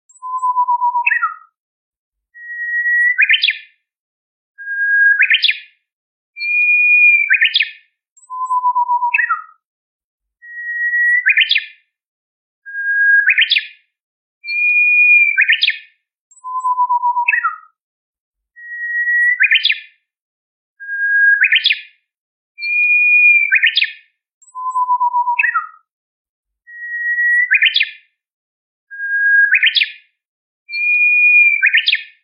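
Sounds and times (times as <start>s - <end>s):
warbler singing: 0.2s - 1.4s, 2.4s - 3.6s, 6.4s - 9.4s, 10.4s - 11.7s, 12.8s - 13.7s, 14.5s - 17.6s, 18.6s - 19.8s, 20.9s - 21.8s, 22.6s - 23.9s, 24.5s - 25.8s, 26.8s - 27.9s, 29.0s - 29.9s, 30.7s - 32.0s.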